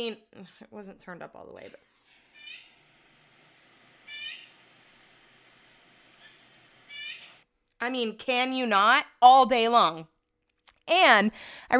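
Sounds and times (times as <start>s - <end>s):
speech: 0.0s - 2.2s, 7.8s - 10.1s, 10.9s - 11.7s
bird calling played back from a recorded video: 4.0s - 4.7s.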